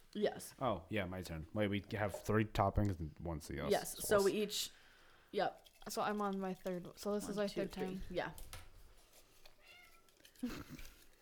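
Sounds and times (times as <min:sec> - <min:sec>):
faint noise: 0:00.0 - 0:11.1
speech: 0:00.1 - 0:08.6, 0:10.4 - 0:10.9
cat meowing: 0:09.6 - 0:10.2.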